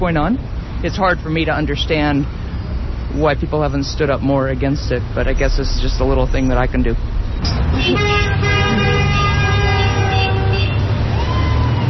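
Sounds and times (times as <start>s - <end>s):
speech: 0.0s - 2.4s, 3.1s - 8.5s
steady rumble of street traffic: 0.0s - 11.8s
car horns honking: 7.4s - 11.0s.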